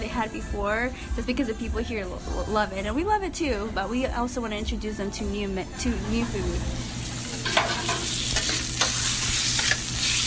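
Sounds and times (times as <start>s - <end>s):
speech: 0.2s - 6.9s
chicken fajitas with tomatoes, green peppers and onions sizzling on a hot grill top: 6.2s - 10.2s.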